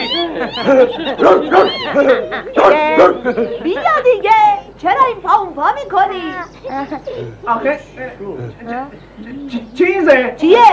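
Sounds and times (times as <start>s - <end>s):
dog whimpering: 0.0s - 3.4s
laughter: 0.0s - 4.1s, 6.6s - 7.5s
speech: 0.3s - 10.7s.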